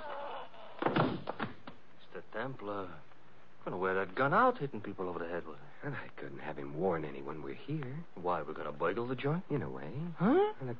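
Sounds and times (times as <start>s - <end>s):
door slamming shut: 0.8s - 1.7s
speech: 2.4s - 10.7s.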